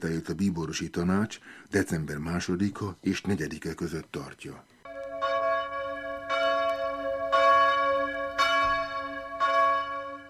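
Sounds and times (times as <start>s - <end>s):
speech: 0.0s - 4.7s
newly blessed church bell ringing at an earthquake-struck parish church: 4.9s - 10.2s.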